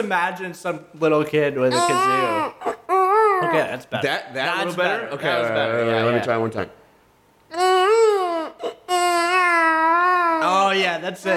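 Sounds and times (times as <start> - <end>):
speech: 0.0 - 2.8, 3.4 - 6.8, 10.7 - 11.3
person imitating a newborn infant's cry: 1.7 - 3.7, 7.5 - 10.7.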